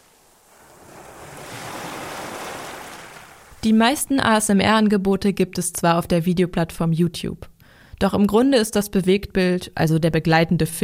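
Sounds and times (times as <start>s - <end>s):
ocean waves breaking on shore: 0.0s - 3.6s
speech: 3.6s - 10.8s.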